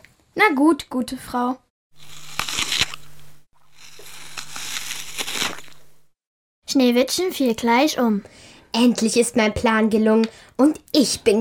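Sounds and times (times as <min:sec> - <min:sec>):
speech: 0:00.4 - 0:02.1, 0:06.8 - 0:11.3
person biting into and chewing a crisp apple: 0:02.0 - 0:06.2.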